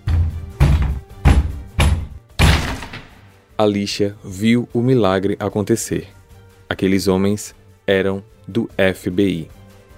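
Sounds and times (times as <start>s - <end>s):
heavy thuds as agents ram a room door to force it open: 0.0s - 3.3s
speech: 3.6s - 6.2s, 6.8s - 9.6s.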